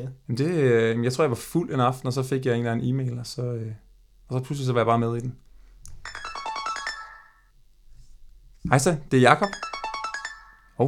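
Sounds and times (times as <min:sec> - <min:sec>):
speech: 0:00.0 - 0:05.4, 0:08.6 - 0:09.7
phone ringtone: 0:06.0 - 0:07.5, 0:09.4 - 0:10.8.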